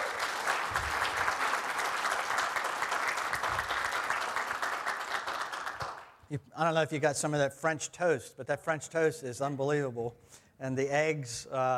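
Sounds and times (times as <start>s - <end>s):
crowd applauding cafe team on Palm Sunday: 0.0s - 6.2s
speech: 6.3s - 11.7s.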